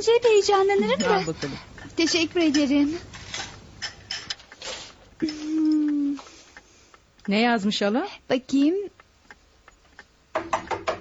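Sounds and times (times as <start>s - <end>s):
speech: 0.0s - 3.5s, 5.2s - 5.8s, 7.2s - 9.0s
knocking on a door: 10.3s - 10.9s.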